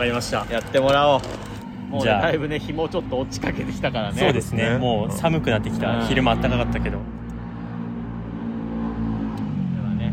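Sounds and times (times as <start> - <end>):
speech: 0.0 - 7.2
motorcycle passing by on a street: 5.4 - 10.1.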